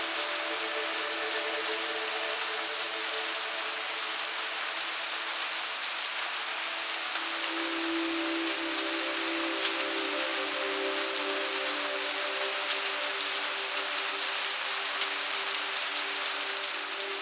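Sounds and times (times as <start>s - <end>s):
soft rain falling on a city street: 0.0s - 17.2s.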